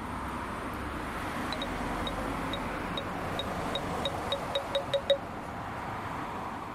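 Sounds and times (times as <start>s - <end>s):
street traffic: 0.0s - 6.7s
navigation aid obstacle warning beeps: 1.5s - 5.2s.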